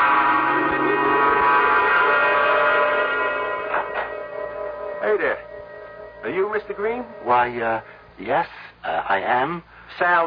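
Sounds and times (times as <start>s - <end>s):
doorbell chime: 1.0s - 8.0s
speech: 6.6s - 10.2s.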